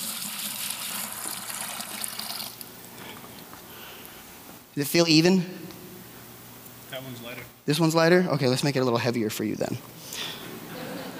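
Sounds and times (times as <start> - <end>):
water pouring into a container: 0.0 - 2.6
speech: 4.8 - 5.6, 7.0 - 10.3
laughter: 10.4 - 11.1.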